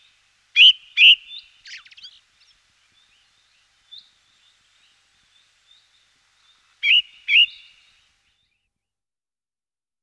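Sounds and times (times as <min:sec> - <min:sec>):
ring ouzel twittering song: 0:00.6 - 0:07.8.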